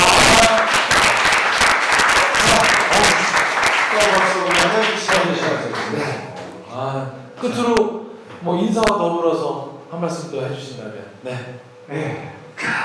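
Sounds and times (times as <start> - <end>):
scattered voices and cheers: 0.0 - 5.6
crowd applauding: 0.0 - 6.3
speech: 7.4 - 12.8.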